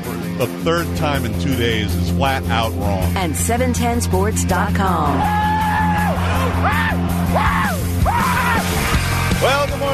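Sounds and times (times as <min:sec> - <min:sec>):
speech: 0:00.4 - 0:05.6, 0:06.6 - 0:08.3
baseball fans screaming with joy after a game: 0:05.1 - 0:09.6.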